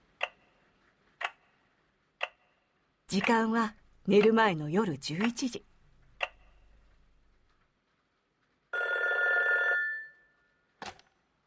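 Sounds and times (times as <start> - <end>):
speech: 3.1 - 5.7
home telephone bell ringing: 8.7 - 10.4.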